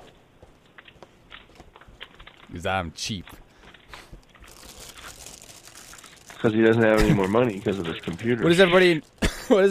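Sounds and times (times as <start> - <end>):
speech: 2.5 - 3.4, 6.4 - 9.6
chewing dry toasted oat cereal: 3.7 - 9.6.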